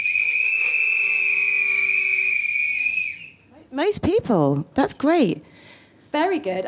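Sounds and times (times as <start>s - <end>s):
audience whistling in response: 0.0s - 3.5s
speech: 3.7s - 6.6s.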